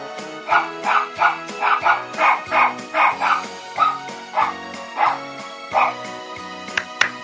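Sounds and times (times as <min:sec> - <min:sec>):
dog barking a tune: 0:00.4 - 0:06.1.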